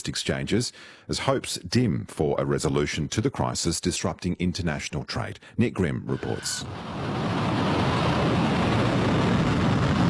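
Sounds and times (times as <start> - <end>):
speech: 0.0 - 8.4
missiles being launched: 6.1 - 10.0.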